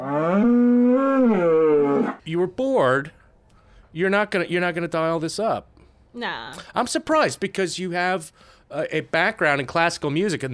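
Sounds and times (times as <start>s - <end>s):
cow mooing: 0.0s - 2.2s
speech: 2.4s - 3.2s, 3.9s - 10.5s.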